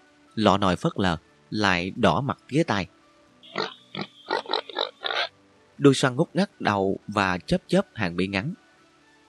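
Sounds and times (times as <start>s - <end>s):
speech: 0.4s - 3.0s, 5.8s - 8.6s
voice imitating pig grunts: 3.5s - 5.3s.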